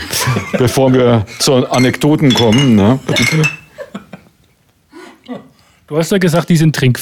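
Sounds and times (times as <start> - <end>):
laughter: 0.0 - 1.7, 3.0 - 4.3
speech: 0.3 - 3.6, 5.3 - 7.0
glasses clinking in a toast: 0.9 - 3.9.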